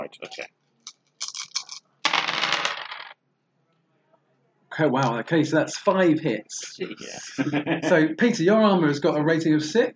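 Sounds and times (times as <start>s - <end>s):
speech: 0.1s - 0.6s, 4.7s - 9.9s
dice tumbling and skittering across a hard tabletop: 1.2s - 3.2s
laughter: 7.0s - 8.2s.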